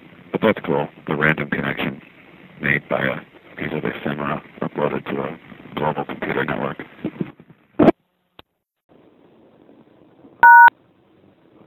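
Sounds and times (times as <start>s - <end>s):
speech: 0.4s - 6.9s
payphone keypad touch-tone beep: 10.4s - 10.7s.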